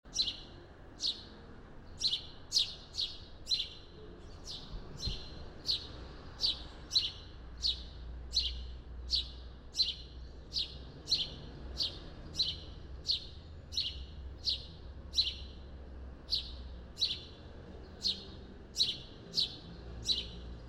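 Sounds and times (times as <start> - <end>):
house sparrow Passer domesticus chirping: 0.1 - 20.6.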